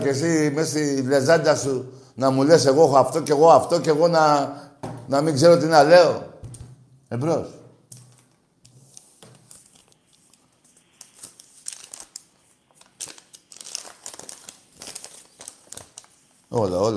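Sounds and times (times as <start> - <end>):
speech: 0.0 - 6.3, 7.1 - 7.6, 16.5 - 16.9
paper sheets crumpled and shuffled: 8.8 - 16.9.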